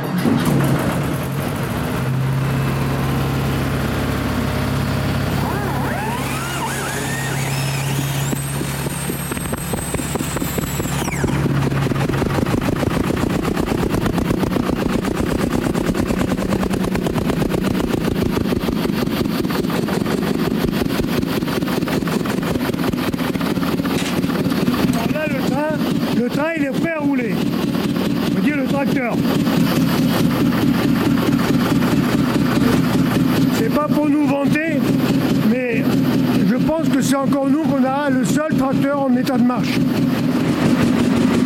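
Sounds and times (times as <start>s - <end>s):
mine tractor compressed air starter hum and whine: 0.0s - 41.4s
mine tractor engine chugging: 0.0s - 41.4s.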